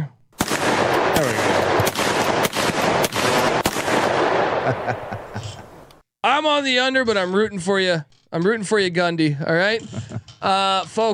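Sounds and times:
loud gunshot sound effects: 0:00.4 - 0:05.8
laughter: 0:04.5 - 0:05.8, 0:09.2 - 0:10.8
speech: 0:06.4 - 0:11.1.

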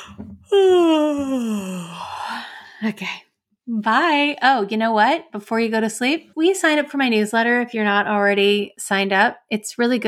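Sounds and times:
long drawn-out human yawn: 0:00.5 - 0:02.4
speech: 0:02.8 - 0:10.0.

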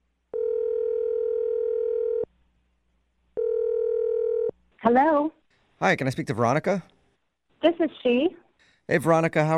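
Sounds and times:
telephone ringback tone: 0:00.3 - 0:02.2, 0:03.4 - 0:04.5
speech: 0:04.9 - 0:06.9, 0:07.6 - 0:09.5.

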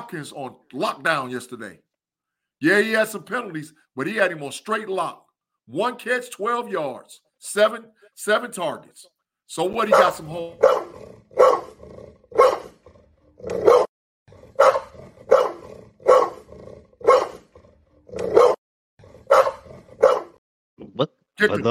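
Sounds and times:
speech: 0:00.0 - 0:01.9, 0:02.6 - 0:11.0, 0:21.0 - 0:21.6
recorded dog barking sound effect with deep gruff barks: 0:09.8 - 0:12.8, 0:13.6 - 0:13.9, 0:14.6 - 0:17.5, 0:18.3 - 0:18.6, 0:19.3 - 0:20.4.

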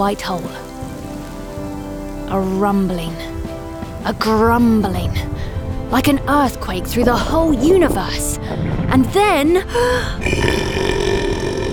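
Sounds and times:
speech: 0:00.0 - 0:00.6, 0:02.3 - 0:03.4, 0:04.0 - 0:11.0
long loud deep gravelly burp: 0:10.2 - 0:11.7.

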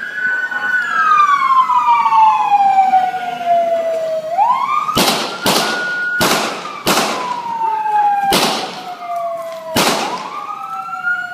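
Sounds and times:
wailing emergency siren: 0:00.0 - 0:11.3
loud sharp gunshots from a gun: 0:05.0 - 0:07.5, 0:08.3 - 0:08.9, 0:09.7 - 0:10.4.

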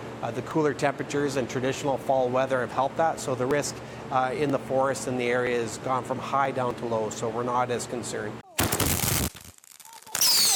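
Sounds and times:
speech: 0:00.2 - 0:08.4
fireworks exploding in crackling bursts: 0:08.5 - 0:10.5.

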